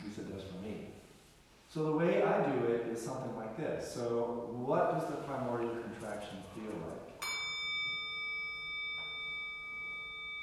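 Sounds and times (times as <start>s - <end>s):
speech: 1.7s - 7.2s
meditation gong ringing: 7.2s - 10.4s.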